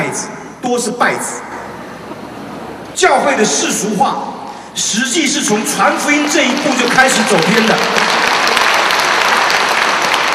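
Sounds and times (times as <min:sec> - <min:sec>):
speech: 0:00.2 - 0:01.6, 0:03.0 - 0:08.4
audience applause during a church sermon: 0:05.6 - 0:10.3.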